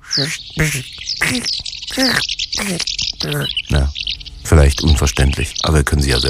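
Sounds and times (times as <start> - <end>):
person imitating a house martin's call: 0.0 - 4.0
speech: 0.2 - 6.2.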